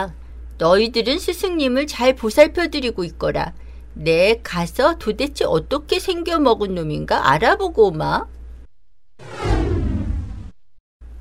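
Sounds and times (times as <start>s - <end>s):
speech: 0.0s - 8.4s
airy whoosh of someone springing up into the air: 9.2s - 10.6s.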